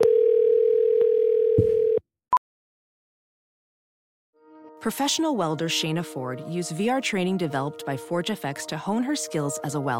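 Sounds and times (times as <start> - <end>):
telephone dial tone while calling back: 0.0 - 2.0
speech: 4.8 - 9.9.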